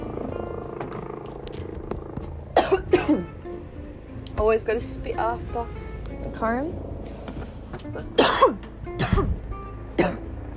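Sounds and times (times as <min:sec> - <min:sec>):
person coughing after a bong hit: 0:02.6 - 0:03.3, 0:08.2 - 0:09.4, 0:10.0 - 0:10.2
speech: 0:04.4 - 0:06.9, 0:07.9 - 0:09.3.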